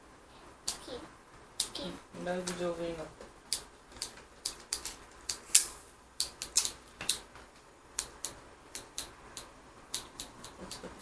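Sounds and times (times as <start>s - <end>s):
scissors snipping: 0.6s - 0.8s, 3.5s - 7.2s, 8.0s - 10.9s
speech: 1.8s - 3.6s.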